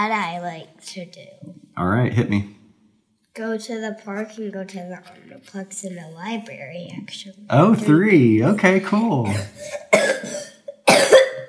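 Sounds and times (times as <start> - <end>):
speech: 0.0 - 2.6, 3.4 - 10.4
person coughing into elbow: 9.2 - 11.4.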